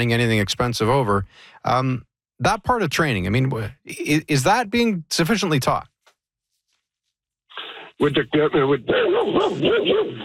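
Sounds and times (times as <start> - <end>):
speech: 0.0 - 5.9, 8.0 - 10.2
dog barking: 9.0 - 10.2.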